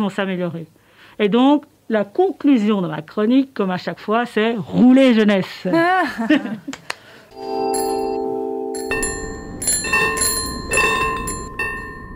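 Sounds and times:
speech: 0.0s - 7.7s
laughter-like voice: 5.7s - 6.9s
old-fashioned bicycle bell ringing: 7.4s - 12.1s.

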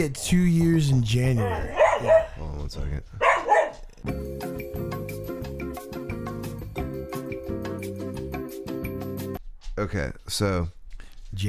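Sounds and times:
speech: 0.0s - 4.4s, 9.8s - 11.4s
dog barking: 1.3s - 2.4s, 3.2s - 3.9s.

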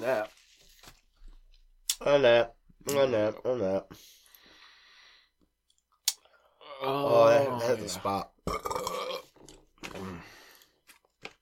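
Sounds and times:
speech: 2.0s - 4.2s, 6.8s - 9.0s
short low burp: 8.4s - 9.4s.

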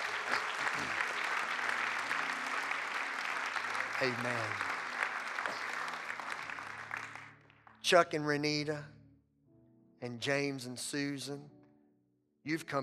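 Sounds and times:
congregation clapping: 0.0s - 8.8s
speech: 4.0s - 4.7s, 7.9s - 9.0s, 10.0s - 11.6s, 12.4s - 12.8s.

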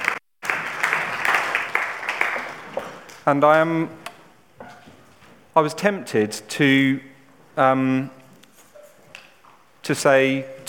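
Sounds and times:
audience applauding a band at a worship service: 0.0s - 3.1s
speech: 3.2s - 4.0s, 5.6s - 8.2s, 9.9s - 10.6s.

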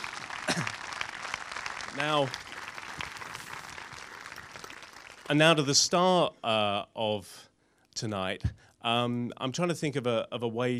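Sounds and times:
audience applauding a guest: 0.0s - 5.9s
speech: 2.0s - 2.4s, 5.3s - 10.7s.

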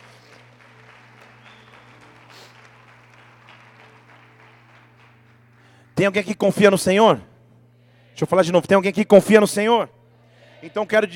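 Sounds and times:
audience applauding in a large room: 0.0s - 5.9s
low steady hum: 0.0s - 11.1s
speech: 6.0s - 7.3s, 8.2s - 10.0s, 10.6s - 11.1s.

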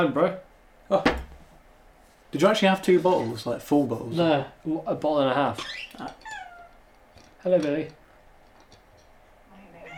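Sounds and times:
speech: 0.0s - 1.2s, 2.3s - 6.3s, 7.4s - 8.0s
cat meowing: 6.2s - 6.8s, 9.7s - 9.9s.

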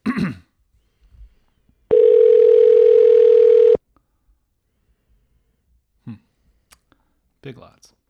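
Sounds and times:
payphone telephone ringback tone through a handset: 1.9s - 3.8s.

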